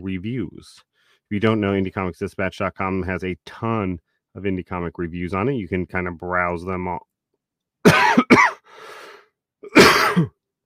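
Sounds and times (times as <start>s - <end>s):
speech: 0.0s - 7.1s, 9.6s - 10.4s
person coughing: 7.9s - 8.7s, 9.6s - 10.4s
raspy wheezing breath: 8.6s - 9.3s.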